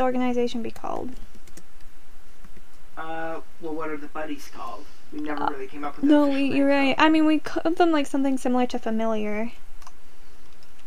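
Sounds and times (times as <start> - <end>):
speech: 0.0 - 1.3, 3.6 - 9.7
low hum: 0.0 - 10.8
typing on a computer keyboard: 0.7 - 1.7.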